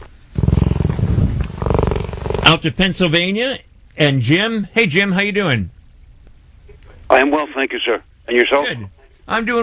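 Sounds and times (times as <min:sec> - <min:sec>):
cheetah purring: 0:00.3 - 0:02.9
speech: 0:02.5 - 0:05.8, 0:07.1 - 0:09.6.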